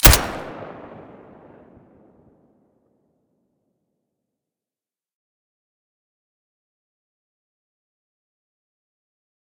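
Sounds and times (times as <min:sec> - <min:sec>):
Colt 1911 pistol shot with silencer: 0:00.0 - 0:01.5.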